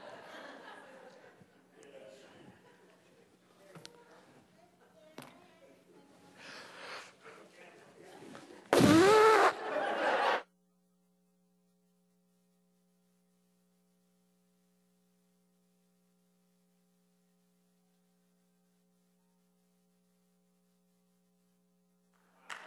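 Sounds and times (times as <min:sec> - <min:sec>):
laughter: 0:00.0 - 0:03.3, 0:08.1 - 0:10.5
loud honking nose blow: 0:08.7 - 0:09.6.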